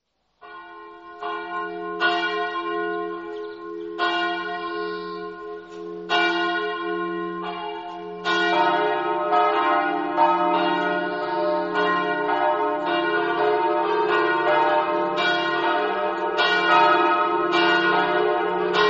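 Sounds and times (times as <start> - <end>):
church bells ringing: 0.4 - 18.8.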